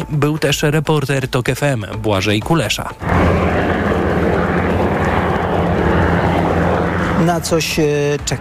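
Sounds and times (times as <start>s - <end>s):
speech: 0.0s - 4.0s, 7.2s - 8.3s
military jet roaring overhead during an air show: 3.0s - 8.3s.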